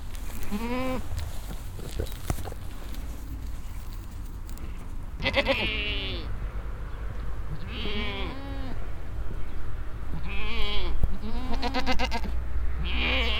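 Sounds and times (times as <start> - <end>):
steady low rumble of passing traffic: 0.0 - 13.3
goats in a roadside corral bleating: 0.3 - 1.1, 5.2 - 6.3, 7.6 - 8.8, 10.2 - 13.3.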